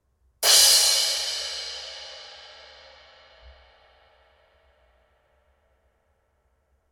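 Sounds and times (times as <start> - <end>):
16-inch effects cymbal: 0.4 - 5.7.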